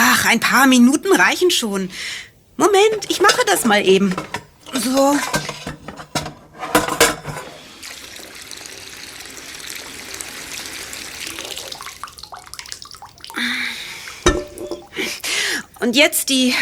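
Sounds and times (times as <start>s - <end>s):
speech: 0.3s - 5.5s, 15.8s - 16.6s
glass jars clinking and knocking in a metal pot: 2.8s - 7.5s, 14.2s - 15.0s
water filling a metal pot from a tap: 7.4s - 16.0s.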